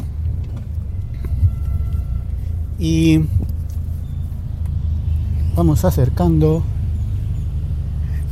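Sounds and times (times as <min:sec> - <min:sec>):
car engine idling during parking maneuver: 0:00.0 - 0:08.3
brief tonal squeal: 0:00.9 - 0:02.8
speech: 0:02.8 - 0:03.4, 0:05.6 - 0:06.8.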